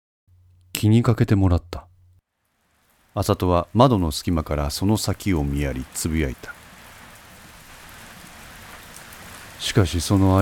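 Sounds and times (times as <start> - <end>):
speech: 0.8 - 1.9, 3.2 - 6.6, 9.6 - 10.4
heavy rain drumming on surfaces: 2.3 - 10.4.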